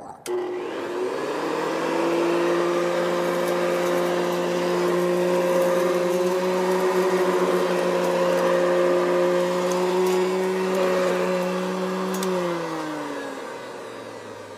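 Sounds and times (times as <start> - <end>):
vacuum cleaner running: 0.1 - 14.5
vacuum cleaner switch click: 0.3 - 0.6, 12.0 - 12.5.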